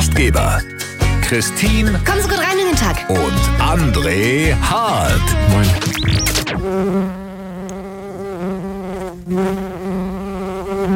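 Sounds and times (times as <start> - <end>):
speech: 0.2 - 0.7, 1.3 - 7.2, 9.3 - 10.0
bee buzzing: 3.2 - 10.9.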